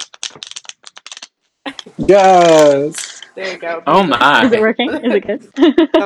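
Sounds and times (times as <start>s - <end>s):
tarot cards being shuffled: 0.0s - 3.4s
speech: 1.8s - 6.0s
laughter: 3.4s - 6.0s.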